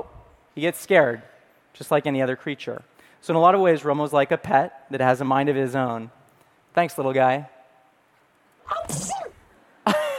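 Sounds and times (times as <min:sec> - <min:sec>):
speech: 0:00.6 - 0:06.2, 0:06.8 - 0:07.5
sneeze: 0:08.7 - 0:09.5.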